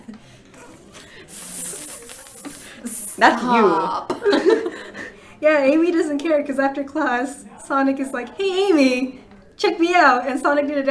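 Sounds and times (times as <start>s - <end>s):
laughter: 0.0s - 5.2s
sharp snake-like hiss: 0.6s - 3.2s
speech: 3.2s - 4.7s, 5.4s - 10.8s.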